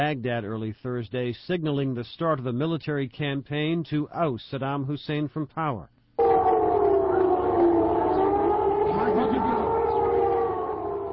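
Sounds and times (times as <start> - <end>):
speech: 0.0 - 6.0
air raid sirens wailing: 6.2 - 11.1.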